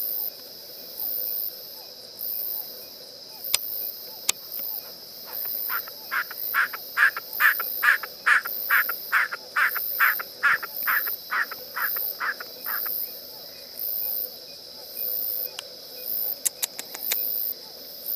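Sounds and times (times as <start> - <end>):
constant insect drone: 0.0 - 18.1
snipe rhythmic rasping call notes: 4.6 - 12.9
sharp clicks: 16.4 - 17.2.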